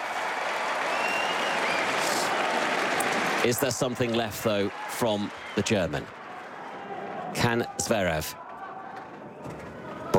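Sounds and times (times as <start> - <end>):
tennis crowd applauding: 0.0 - 9.2
faint whistles from a large crowd: 0.9 - 2.0
speech: 3.4 - 6.2, 7.4 - 8.4.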